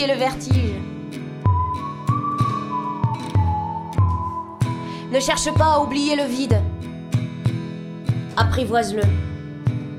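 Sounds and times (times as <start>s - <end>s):
speech: 0.0s - 0.9s, 5.1s - 6.7s, 8.4s - 9.2s
person whistling one long wavering note: 1.5s - 6.5s.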